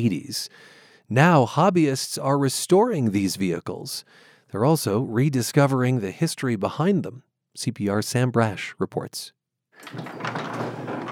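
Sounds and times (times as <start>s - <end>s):
speech: 0.0s - 10.4s
garage door rumbling open in Monument Colorado: 9.8s - 11.0s.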